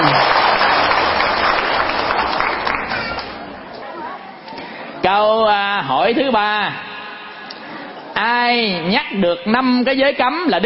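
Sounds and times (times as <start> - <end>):
audience applause at a Buddhist sermon: 0.0 - 3.4
speech: 6.1 - 6.9, 8.2 - 10.6.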